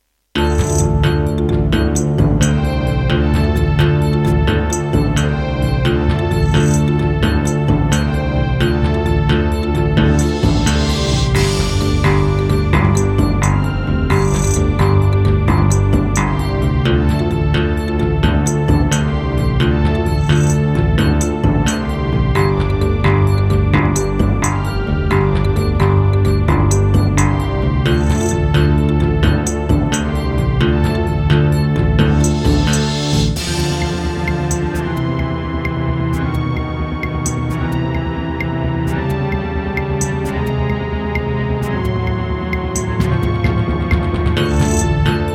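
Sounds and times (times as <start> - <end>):
wavetable synthesizer module: 0.0 - 45.3.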